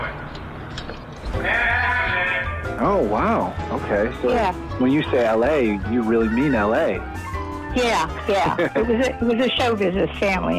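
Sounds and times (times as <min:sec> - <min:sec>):
cat yowling and meowing: 0:01.4 - 0:02.6
speech: 0:02.8 - 0:10.5
laughter: 0:08.2 - 0:09.3.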